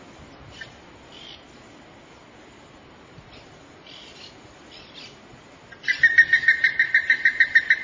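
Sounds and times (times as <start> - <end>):
plumbeous ibis calling in hoarse pulsed notes: 0.4 - 1.6, 3.3 - 7.8.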